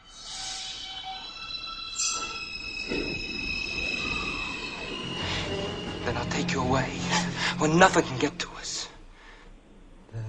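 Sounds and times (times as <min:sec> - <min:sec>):
subway car motor electric tones while departing: 0:00.0 - 0:09.2
subway train rumbling roar: 0:02.0 - 0:10.1
speech: 0:07.6 - 0:08.8.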